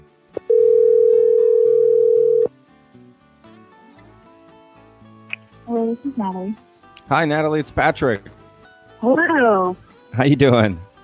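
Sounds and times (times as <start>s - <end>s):
soft music: 0.0s - 11.0s
telephone dial tone: 0.5s - 2.5s
speech: 6.0s - 8.4s, 9.0s - 10.9s.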